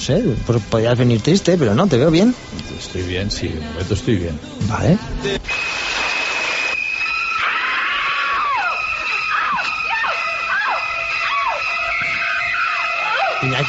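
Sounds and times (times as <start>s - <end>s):
speech: 0.0s - 5.8s, 13.4s - 13.6s
high-pitched screams: 5.5s - 13.6s.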